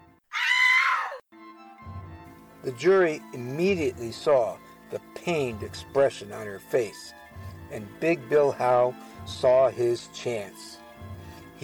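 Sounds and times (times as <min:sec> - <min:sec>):
woman shrieking as fingernails are dug into her wrists: 0:00.3 - 0:01.2
speech: 0:02.6 - 0:10.8.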